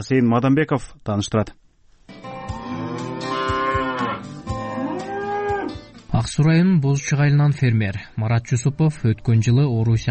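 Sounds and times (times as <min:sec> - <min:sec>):
speech: 0:00.0 - 0:01.6, 0:06.2 - 0:10.1
Simmental dairy-and-beef cattle mooing on a farm in Aksuu district: 0:02.4 - 0:05.8.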